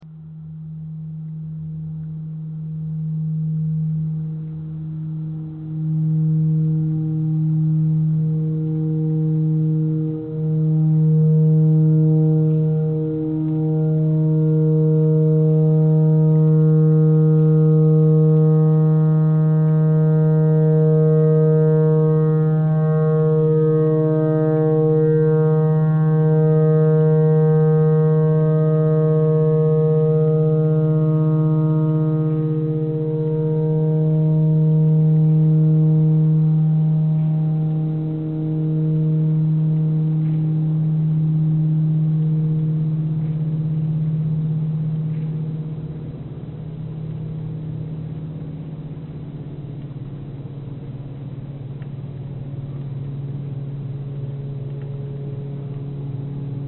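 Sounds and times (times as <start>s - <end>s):
pentatonic clarinet notes: 3.0s - 46.8s
tornado siren: 5.2s - 51.6s.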